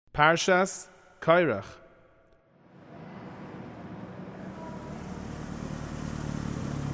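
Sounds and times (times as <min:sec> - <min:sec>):
speech: 0:00.2 - 0:01.8
car engine low rumble approaching: 0:02.7 - 0:06.9.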